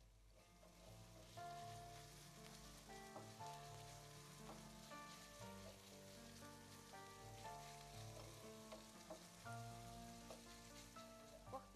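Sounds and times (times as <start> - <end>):
minced meat sizzling while frying in a hot pan: 0.2 - 11.7.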